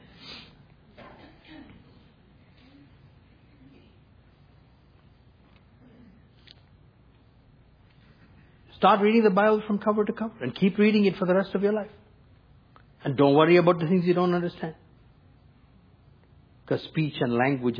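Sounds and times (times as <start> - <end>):
person sniffing from pollen allergy: 0.0 - 0.6
faint steady low hum: 0.0 - 17.7
speech: 8.8 - 12.0, 13.0 - 14.8, 16.7 - 17.7.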